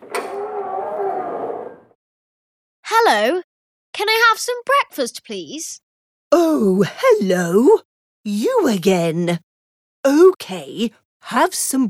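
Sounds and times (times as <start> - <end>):
sharp click of the door latch: 0.0 - 0.4
door creaking open: 0.0 - 2.0
speech: 3.1 - 11.8.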